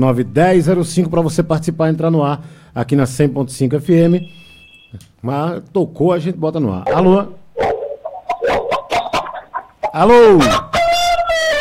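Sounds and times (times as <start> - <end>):
speech: 0.0 - 7.4, 9.9 - 10.8
dog barking over a telephone call to an FM radio station: 6.9 - 11.5.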